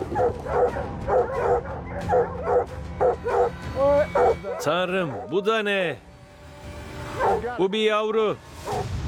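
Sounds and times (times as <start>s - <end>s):
hunting dogs barking and baying at a treed mountain lion: 0.0s - 5.5s, 7.2s - 7.5s
speech: 4.6s - 6.1s, 7.3s - 8.9s.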